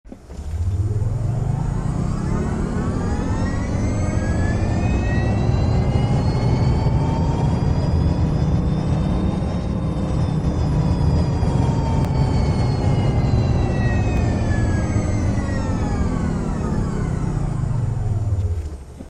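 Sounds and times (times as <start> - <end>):
Myli electric engine: 0.1 - 19.0.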